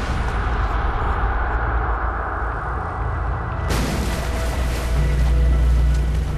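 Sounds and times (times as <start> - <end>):
low engine-like drone: 0.0 - 6.3
rough sea churning around a small boat: 3.6 - 6.3
wave slapping a small boat: 3.7 - 6.3.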